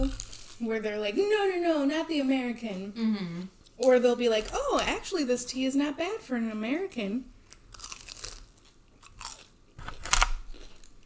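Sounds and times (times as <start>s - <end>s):
speech: 0.1s - 7.3s
crunchy chewing up close to the microphone: 7.4s - 11.0s.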